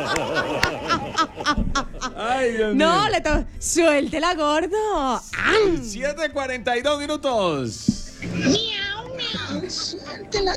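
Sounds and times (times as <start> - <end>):
laughter: 0.0 - 3.4, 5.4 - 10.5
speech: 2.4 - 10.5
cat meowing: 8.2 - 10.5.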